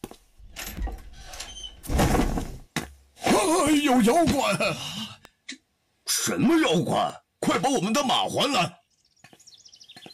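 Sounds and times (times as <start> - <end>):
cabinet door scraping and creaking open: 0.4 - 2.6
speech: 3.4 - 4.9, 6.3 - 8.8.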